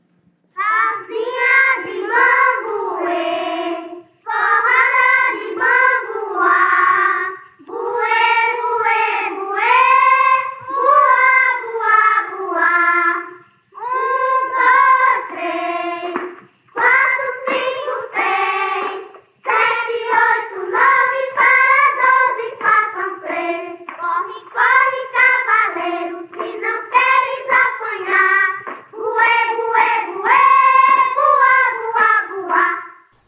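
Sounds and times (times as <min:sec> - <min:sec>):
children singing a Brazilian circle song together: 0:00.6 - 0:33.2
light hand claps: 0:16.1 - 0:16.6, 0:17.4 - 0:17.8, 0:23.8 - 0:24.1, 0:26.3 - 0:26.7, 0:28.5 - 0:28.9.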